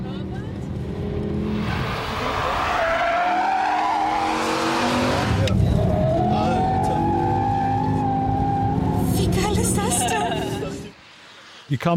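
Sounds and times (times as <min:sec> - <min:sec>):
racing car engines roaring and revving on the Nordschleife track: 0:00.0 - 0:11.0
racing car tires squealing and skidding: 0:01.4 - 0:10.9
speech: 0:11.7 - 0:11.9.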